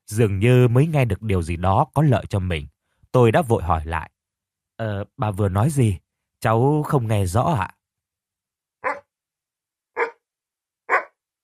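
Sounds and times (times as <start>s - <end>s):
speech: 0.1s - 4.1s, 4.8s - 7.8s
dog barking loudly indoors in a room: 8.8s - 9.1s, 10.0s - 10.2s, 10.9s - 11.2s.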